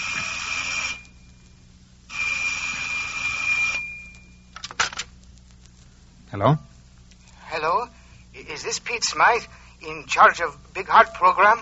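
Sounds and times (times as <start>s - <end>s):
old-style telephone bell ringing: 0.0s - 1.2s, 2.1s - 4.4s
speech: 6.3s - 6.7s, 8.6s - 11.6s.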